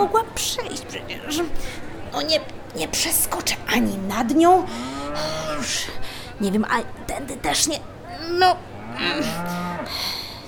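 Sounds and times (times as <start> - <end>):
speech: 0.0 - 10.1
cow mooing: 4.6 - 5.7, 8.6 - 10.0.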